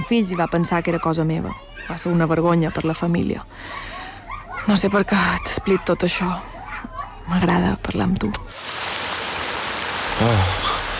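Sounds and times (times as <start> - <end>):
speech: 0.0 - 4.0, 4.7 - 6.5, 7.2 - 8.8, 10.2 - 10.6
steady rain: 8.5 - 10.9
low voiced sound: 10.1 - 10.8.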